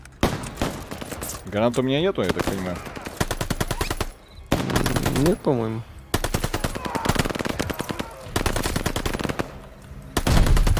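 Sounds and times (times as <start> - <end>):
speech: 1.5 - 3.0, 5.2 - 5.9
rapid automatic gunfire from a video game: 2.3 - 5.4, 6.1 - 9.6, 10.2 - 10.7.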